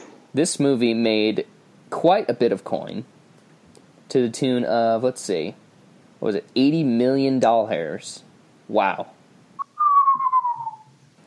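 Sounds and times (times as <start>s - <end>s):
speech: 0.4s - 3.1s, 4.1s - 5.6s, 6.2s - 9.2s
person whistling: 9.6s - 10.9s.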